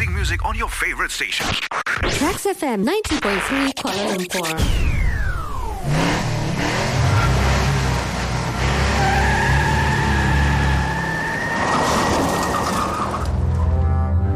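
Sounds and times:
speech: 0:00.2 - 0:04.9
speeding car engine roaring and revving: 0:04.6 - 0:13.9
car tires squealing in long skids: 0:05.8 - 0:14.0.

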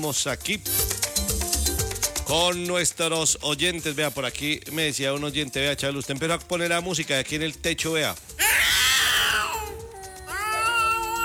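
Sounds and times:
speech: 0:00.0 - 0:01.4, 0:02.3 - 0:08.4
cats caterwauling in a fight on a roof: 0:08.4 - 0:11.2.

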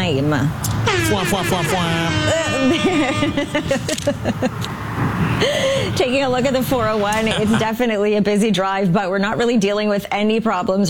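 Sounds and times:
speech: 0:00.1 - 0:10.8
brassy air horn sound effect blasting: 0:00.8 - 0:04.0, 0:05.8 - 0:07.0
laughter: 0:01.6 - 0:04.7, 0:07.0 - 0:07.9.

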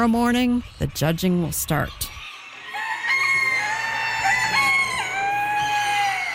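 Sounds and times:
speech: 0:00.0 - 0:02.2
hens clucking at a fairground: 0:00.6 - 0:06.3
show roosters crowing at a fairground: 0:02.2 - 0:06.3.

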